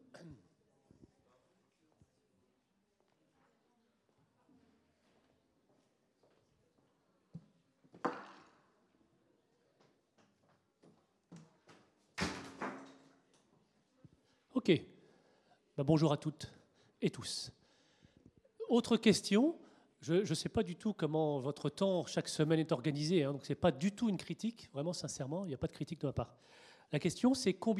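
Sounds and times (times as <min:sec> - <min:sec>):
door being pushed shut: 0:12.2 - 0:13.1
speech: 0:14.6 - 0:14.9, 0:15.8 - 0:17.6, 0:18.7 - 0:27.7.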